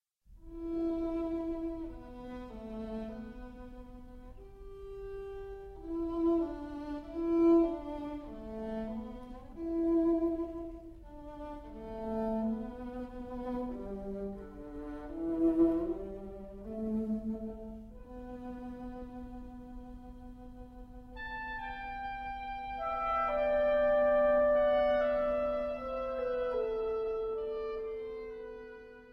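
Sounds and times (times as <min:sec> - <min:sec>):
clarinet: 0:00.4 - 0:29.1
oboe: 0:00.4 - 0:29.1
viola: 0:00.4 - 0:29.1.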